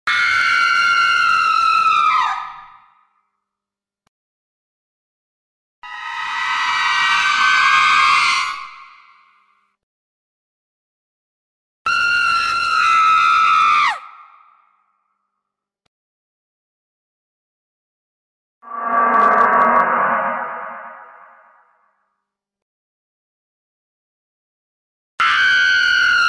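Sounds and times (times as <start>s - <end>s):
horror screams: 0.1s - 2.9s, 5.8s - 9.2s, 11.9s - 14.6s, 18.6s - 21.6s, 25.2s - 26.2s
horror suspense sounds: 18.6s - 21.7s.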